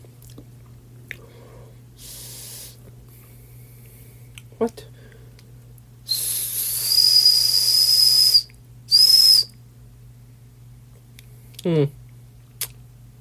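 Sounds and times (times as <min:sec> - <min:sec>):
low steady hum: 0:00.0 - 0:13.1
speech: 0:04.6 - 0:04.9, 0:11.6 - 0:12.0
small survival tool whistle blasts: 0:06.1 - 0:09.5.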